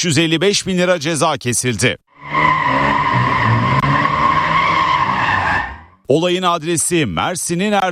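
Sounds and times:
speech: 0.0 - 2.4, 6.1 - 7.8
car tires skidding and squealing while drifting on a street at night: 2.1 - 6.1.

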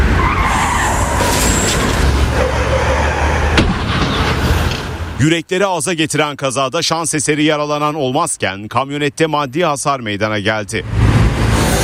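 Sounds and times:
bus tires skidding under hard braking: 0.0 - 5.2
high squeal: 0.1 - 3.6
speech: 5.2 - 11.0.

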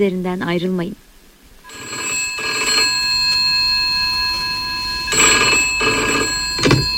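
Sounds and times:
speech: 0.0 - 1.0
steady electronic tone humming: 1.6 - 6.9
telephone ringing loudly: 1.6 - 6.9.

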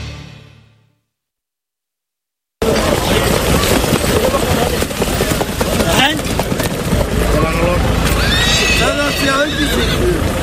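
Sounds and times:
ambling horses neighing on a sand track: 2.6 - 10.4
ambling-gait horse hooves clip-clopping on a sand track: 2.6 - 10.4
voices: 2.6 - 10.4.

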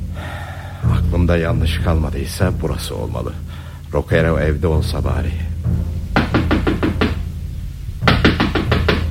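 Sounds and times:
heavy rain: 0.0 - 2.1, 4.8 - 9.1
speech: 1.1 - 5.9
firm knocking on the wooden door of a shut house: 5.7 - 7.4, 8.0 - 9.1.

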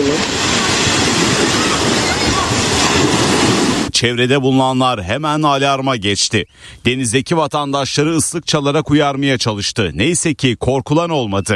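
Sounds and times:
earth mass from a hillside collapse pouring into the sea near a beach: 0.0 - 3.9
speech: 4.0 - 11.5.

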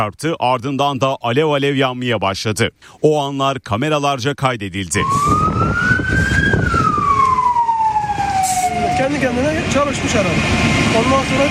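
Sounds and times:
speech: 0.0 - 6.5, 9.0 - 11.5
continuous rumble of traffic: 4.9 - 11.5
fire engine siren wailing: 4.9 - 11.5.

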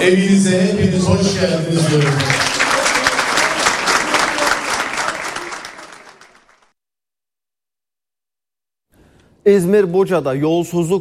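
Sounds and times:
speech: 0.0 - 2.6, 9.5 - 11.0
municipal workers and party members applauding an official: 1.7 - 6.7.

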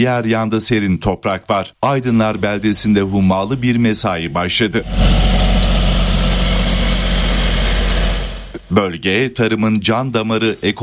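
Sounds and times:
speech: 0.0 - 5.3, 8.6 - 10.8
tractor engines droning while working a field for bean sowing: 1.8 - 9.3.

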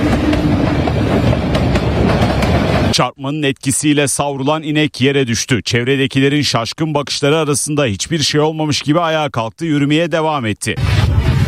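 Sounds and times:
train speeding along a railway in India: 0.0 - 3.0, 10.8 - 11.4
train wheels clickety-clack passing rail joints: 0.0 - 3.0
speech: 3.0 - 11.3.

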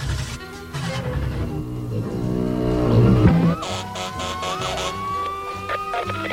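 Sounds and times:
music-like background: 0.0 - 6.3
rumbling engine: 0.0 - 6.3
car siren wailing: 1.9 - 6.3.

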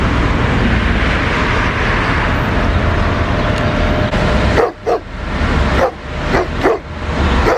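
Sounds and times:
steady broadband traffic noise: 0.0 - 7.5
stray street dogs barking in an outdoor car park: 4.5 - 5.1, 5.7 - 7.5.

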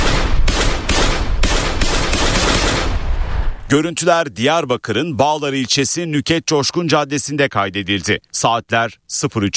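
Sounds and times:
gunfire at a jewellery shop on a street at night: 0.0 - 3.1
speech: 3.7 - 9.5.

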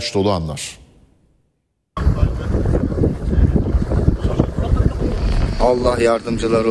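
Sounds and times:
speech: 0.0 - 0.8, 5.6 - 6.6
crackling noise from a burning tour boat at sea: 2.0 - 6.6
steady wind roar buffeting the microphone aboard a boat at sea: 2.0 - 6.6.

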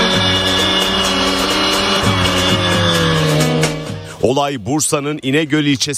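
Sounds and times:
car tyres squealing while drifting: 0.0 - 4.0
car engine roaring while drifting in broad daylight in İnegöl, Bursa: 0.0 - 5.3
speech: 4.2 - 5.9.

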